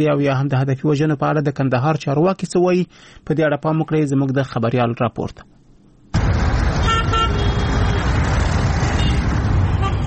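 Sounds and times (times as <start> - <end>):
speech: 0.0 - 5.6
street traffic of cars and motorcycles: 6.1 - 10.0.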